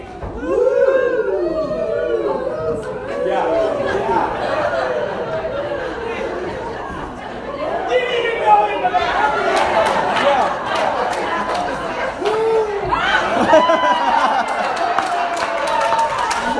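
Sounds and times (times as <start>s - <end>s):
large audience shouting woo row by row: 0.4s - 6.4s, 12.2s - 16.5s
laughter: 0.8s - 16.5s.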